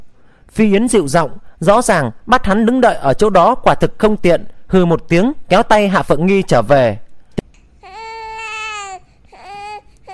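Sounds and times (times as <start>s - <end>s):
speech: 0.5s - 7.0s
baby crying in a forest: 7.8s - 10.1s.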